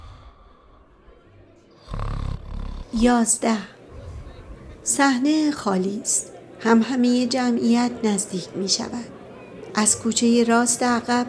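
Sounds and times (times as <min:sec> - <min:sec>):
men snoring loudly: 0:01.8 - 0:03.2
speech: 0:02.9 - 0:03.8, 0:04.9 - 0:09.2, 0:09.8 - 0:11.2.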